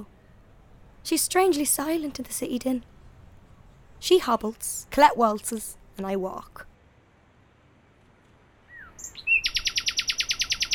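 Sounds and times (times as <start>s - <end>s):
speech: 1.0s - 2.9s, 4.0s - 6.7s
nightingale Luscinia megarhynchos singing at night in the city at Temple Bar: 8.6s - 10.7s.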